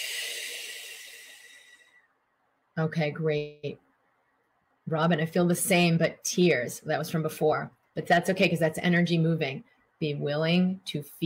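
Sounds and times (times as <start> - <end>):
breath exhaled slowly in a relaxation exercise: 0.0 - 2.1
speech: 2.8 - 3.9, 4.9 - 11.2.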